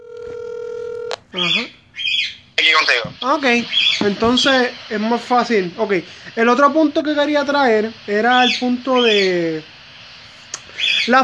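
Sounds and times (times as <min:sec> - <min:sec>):
electronic dialing tone from a call on a cell phone: 0:00.0 - 0:01.2
speech: 0:01.3 - 0:01.8, 0:02.8 - 0:09.7, 0:10.8 - 0:11.2.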